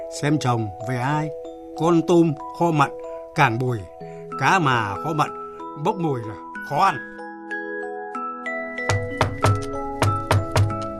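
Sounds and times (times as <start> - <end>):
speech: 0.1 - 7.1
firm knocks on a door: 8.8 - 10.8.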